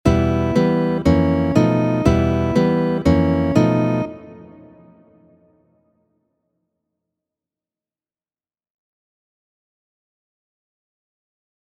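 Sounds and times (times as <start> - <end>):
chord study with Argentine tango harmonies: 0.0 - 5.6.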